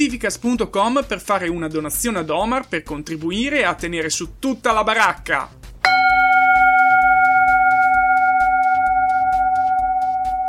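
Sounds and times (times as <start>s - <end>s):
speech: 0.0s - 5.6s
soft rhythmic pulsing: 5.8s - 10.4s
Tibetan singing bowl ringing: 5.9s - 10.4s.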